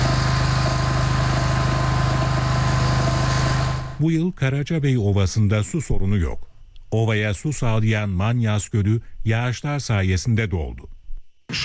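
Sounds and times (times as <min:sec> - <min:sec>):
agricultural drone sowing rice over flooded paddy fields: 0:00.0 - 0:04.0
speech: 0:04.0 - 0:10.9.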